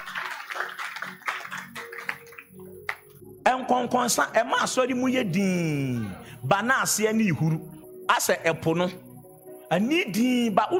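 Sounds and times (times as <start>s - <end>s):
audience clapping their hands during a sermon: 0.0s - 3.2s
speech: 3.6s - 9.0s, 9.7s - 10.7s.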